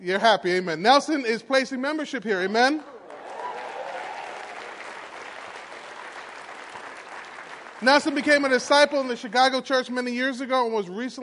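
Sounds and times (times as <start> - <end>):
speech: 0.0 - 3.0, 7.8 - 11.2
audience applauding: 2.8 - 9.1.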